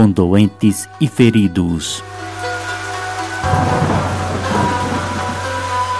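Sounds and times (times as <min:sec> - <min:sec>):
speech: 0:00.0 - 0:02.4
heavy monsoon rain: 0:02.0 - 0:05.9
deep rumble of thunder: 0:02.1 - 0:05.9.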